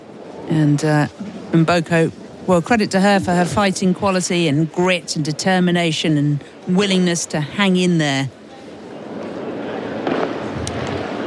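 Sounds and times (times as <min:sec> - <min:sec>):
speech: 0:00.5 - 0:08.4
fireworks exploding outside: 0:10.0 - 0:11.2.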